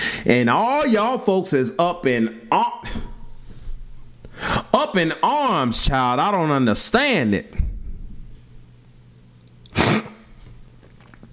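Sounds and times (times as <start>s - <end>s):
speech: 0.2s - 3.0s, 4.7s - 7.7s
snorting sniff from person with allergies and a sinus infection: 9.7s - 10.3s.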